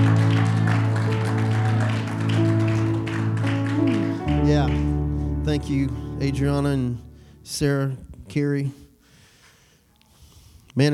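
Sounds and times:
crowd applauding with steady hand clapping: 0.0 - 6.0
sustained keyboard chords: 0.0 - 8.4
speech: 5.6 - 8.8, 10.8 - 10.9.

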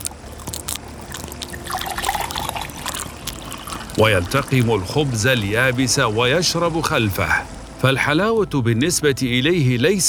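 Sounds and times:
bubbling trickles and gurgles of river water: 0.0 - 8.0
river water flowing: 0.0 - 8.5
speech: 4.0 - 10.0.

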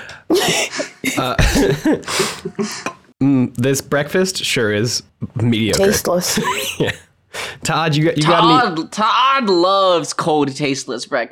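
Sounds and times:
harsh throaty coughs: 0.3 - 3.0
speech: 0.5 - 11.3.

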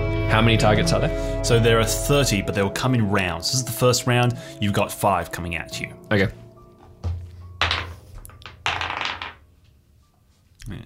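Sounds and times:
speech: 0.3 - 6.4
dice rolled on a hard surface during a tabletop role-playing game: 7.6 - 9.4.

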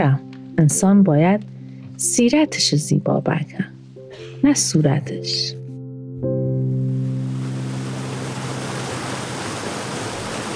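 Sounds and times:
speech: 0.0 - 5.6
rushing water from a waterfall roaring: 7.1 - 10.5.

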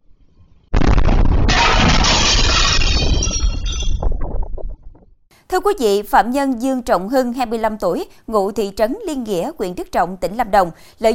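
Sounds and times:
explosion blast: 0.7 - 4.5
glass door shattering: 1.4 - 4.2
glass shards tinkling and raining down: 2.2 - 4.0
speech: 5.6 - 11.1.

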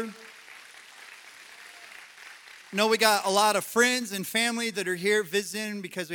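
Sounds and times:
speech: 0.0 - 0.3, 2.7 - 6.1
church audience clapping hands: 0.0 - 4.1.

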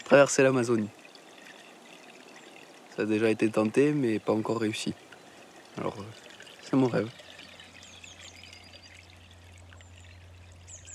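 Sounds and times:
low constant hum: 0.0 - 10.9
water trickling in a stream: 0.0 - 10.9
speech: 0.1 - 1.0, 3.0 - 5.1, 5.8 - 7.2
high bird chirps: 6.9 - 10.9.

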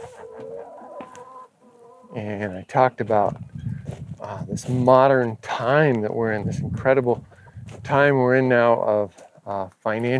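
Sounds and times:
farm chickens clucking and squawking: 0.0 - 4.8, 6.5 - 7.7, 9.1 - 9.5
speech: 2.1 - 10.1.

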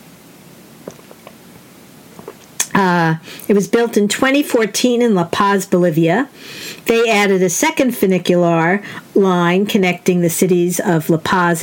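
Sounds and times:
soft sips and swallows of coffee: 0.8 - 1.5, 2.1 - 2.8
speech: 2.8 - 11.6.

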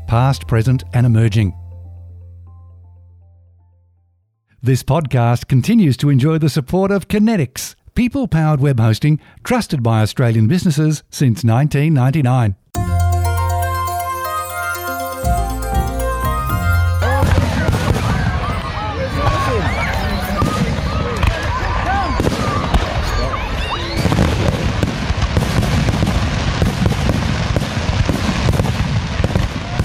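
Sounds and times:
speech: 0.1 - 1.6, 4.6 - 12.6
steady tones: 12.8 - 20.0
large crowd cheering: 12.8 - 24.2
New Year's Eve public fireworks crackling and bursting in Limestone Park, Ipswich: 24.0 - 29.8.

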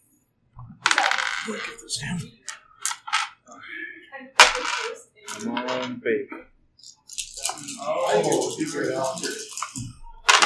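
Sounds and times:
dice rolling on a hard tabletop during a game: 0.9 - 2.2, 2.8 - 3.4, 4.4 - 6.0, 6.8 - 10.4
speech: 1.5 - 2.5, 5.3 - 6.5, 7.8 - 9.9.

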